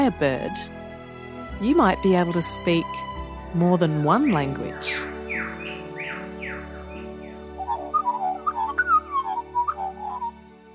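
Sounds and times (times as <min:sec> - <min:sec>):
speech: 0:00.0 - 0:00.8, 0:01.6 - 0:05.1
birds calling back and forth with whistles, chirps and warbling notes: 0:03.8 - 0:10.6.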